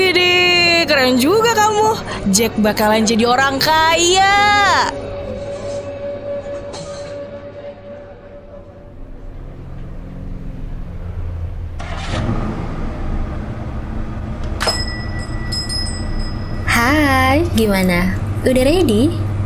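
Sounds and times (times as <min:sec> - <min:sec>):
Wolseley car engine rumbling: 0:00.0 - 0:19.4
speech: 0:01.1 - 0:05.1, 0:17.6 - 0:19.2
Wolseley car brakes clunking and squealing: 0:04.9 - 0:18.4.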